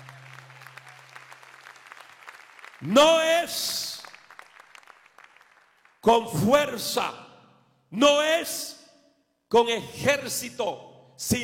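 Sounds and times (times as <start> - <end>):
church congregation applauding: 0.0 - 6.1
speech: 2.8 - 3.9, 6.0 - 7.2, 7.9 - 8.8, 9.5 - 11.4.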